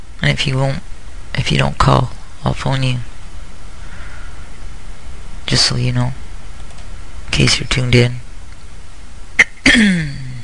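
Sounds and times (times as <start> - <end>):
speech: 0.2 - 3.1, 5.5 - 6.2, 7.3 - 8.2, 9.7 - 10.2
person clearing throat: 9.4 - 10.4.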